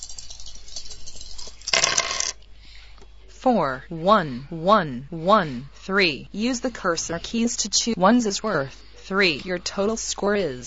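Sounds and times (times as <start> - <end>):
dice rattling in a computer dice game: 1.1 - 2.4
speech: 3.4 - 10.6.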